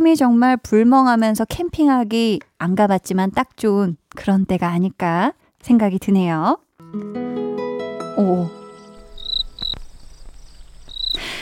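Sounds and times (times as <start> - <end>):
speech: 0.0 - 7.3, 8.2 - 8.6
crickets chirping: 8.5 - 11.4.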